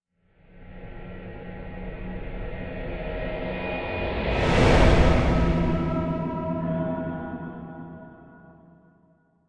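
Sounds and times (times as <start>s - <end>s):
slow metallic sci-fi whoosh transition with vocal elements: 3.6s - 8.3s.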